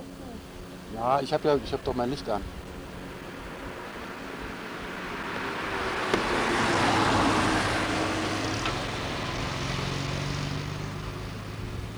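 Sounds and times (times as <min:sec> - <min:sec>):
car approaching from behind with road rush: 0:00.0 - 0:11.9
speech: 0:00.9 - 0:02.6.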